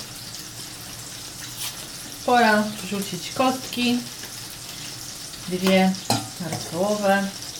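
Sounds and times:
water boiling in a pot while cooking: 0:00.0 - 0:07.5
speech: 0:02.3 - 0:04.2, 0:05.5 - 0:07.4.

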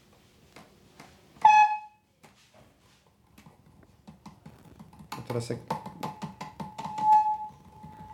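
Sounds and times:
fingers tapping a microphone: 0:03.4 - 0:08.1
speech: 0:05.3 - 0:05.8.

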